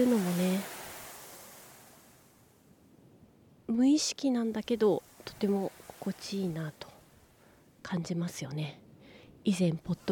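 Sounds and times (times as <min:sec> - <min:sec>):
speech: 0:00.0 - 0:00.8, 0:03.7 - 0:07.0, 0:07.8 - 0:08.8, 0:09.4 - 0:10.1
ocean waves washing in: 0:00.0 - 0:02.9, 0:04.0 - 0:07.8
wind: 0:00.0 - 0:10.1.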